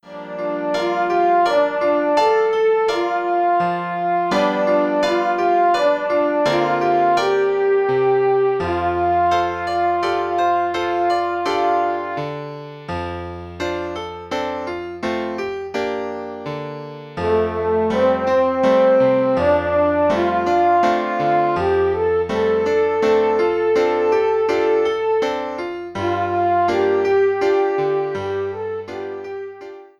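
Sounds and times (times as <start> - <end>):
horn melody: 0.0 - 12.6, 17.2 - 29.7
piano: 0.0 - 29.9.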